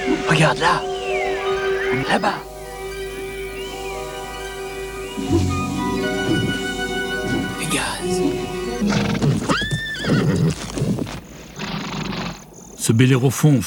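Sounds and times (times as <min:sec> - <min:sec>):
speech: 0:00.1 - 0:00.9, 0:01.9 - 0:02.5, 0:12.9 - 0:13.6
horse hooves clopping and shuffling: 0:05.2 - 0:12.7
horse whinnying: 0:05.3 - 0:12.5.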